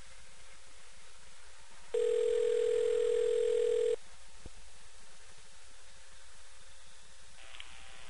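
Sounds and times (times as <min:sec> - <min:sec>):
telephone dial tone humming: 0:02.0 - 0:04.0.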